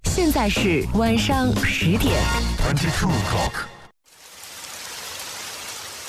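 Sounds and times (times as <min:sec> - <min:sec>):
speech: 0:00.2 - 0:03.7
steady rain falling: 0:04.0 - 0:06.0.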